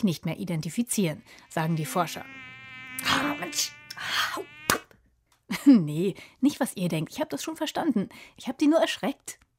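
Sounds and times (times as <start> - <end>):
speech: 0.0 - 4.6, 5.5 - 9.4
mosquito buzzing: 1.2 - 4.9.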